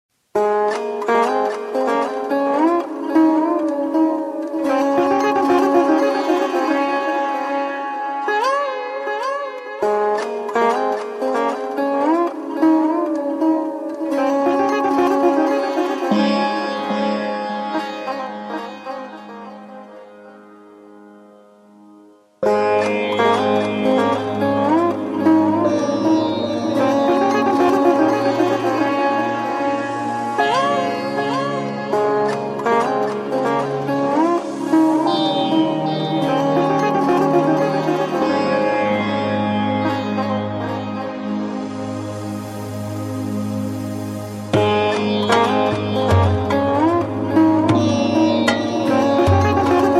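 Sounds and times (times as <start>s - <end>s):
sitar ballad: 0.2s - 49.9s
ambient music: 1.2s - 9.4s, 10.5s - 20.3s, 22.4s - 49.9s.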